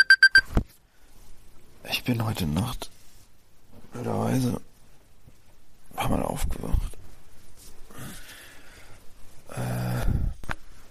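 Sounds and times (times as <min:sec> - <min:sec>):
alarm clock electronic beeps: 0:00.0 - 0:00.5
speech: 0:02.0 - 0:02.9, 0:04.0 - 0:04.7, 0:06.0 - 0:06.9.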